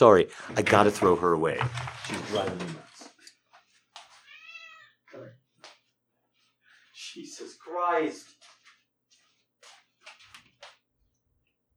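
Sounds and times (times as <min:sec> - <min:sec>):
speech: 0:00.0 - 0:02.8, 0:07.2 - 0:08.3
cat meowing: 0:04.2 - 0:05.4.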